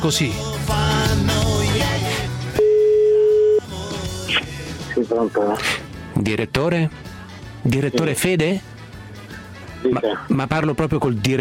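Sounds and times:
speech: 0.0 - 1.4, 5.0 - 8.7, 9.8 - 11.4
music: 0.0 - 11.4
telephone ringing tone while a call is placed: 2.6 - 3.7.

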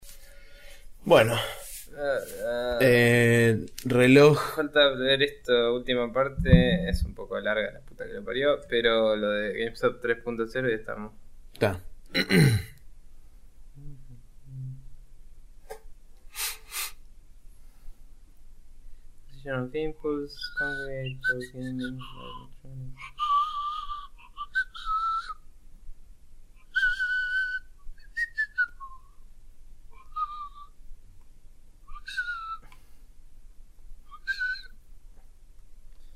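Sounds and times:
speech: 1.0 - 12.7, 19.4 - 23.3
person humming: 6.4 - 7.1, 13.8 - 14.8, 21.7 - 24.1
person whistling the program's jingle tunes: 23.0 - 25.4, 26.7 - 29.0, 30.0 - 30.7, 31.9 - 32.6, 34.1 - 34.7.

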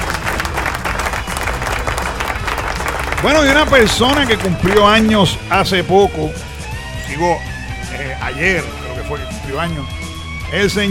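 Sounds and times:
loud dense applause from a crowd: 0.0 - 5.3
speech: 3.2 - 6.5, 7.1 - 7.5, 8.2 - 10.8.

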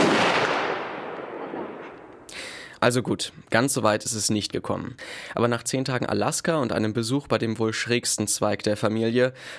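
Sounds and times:
pistol gunshot: 0.0 - 2.1
speech: 2.8 - 9.5.

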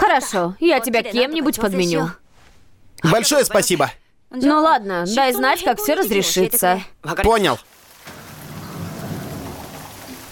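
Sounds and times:
speech: 0.2 - 2.2, 3.0 - 7.7
dense steady hiss of rain: 7.3 - 10.3
low deep thunder rumble: 7.7 - 10.3.

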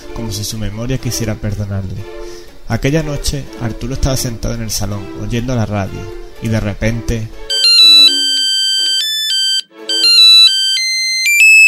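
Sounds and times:
speech: 0.2 - 7.5
mobile phone ringtone playing a bright melodic electronic tune: 7.5 - 11.6.

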